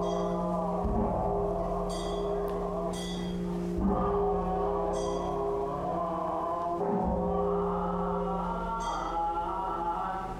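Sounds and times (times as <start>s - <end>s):
faint bright chimes at a temple: 0.0s - 0.5s, 1.9s - 3.5s
ringing metallic tones at a temple in a city: 0.0s - 0.6s, 1.8s - 4.1s, 4.9s - 5.5s
voices at a temple: 0.0s - 10.3s.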